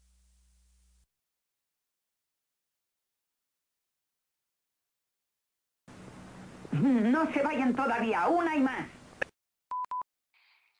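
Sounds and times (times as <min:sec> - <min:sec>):
faint hiss: 0:00.0 - 0:01.0
speech: 0:06.8 - 0:09.0
mobile phone keypad beeps: 0:09.7 - 0:10.0.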